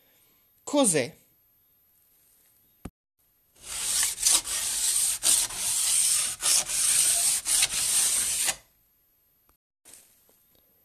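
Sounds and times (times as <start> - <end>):
speech: 0.7 - 1.2
file rasping along ski edges while sharpening: 3.6 - 8.6.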